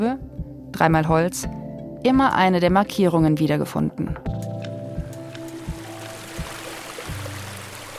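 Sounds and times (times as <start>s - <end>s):
speech: 0.8s - 4.5s
babbling brook: 5.2s - 7.9s.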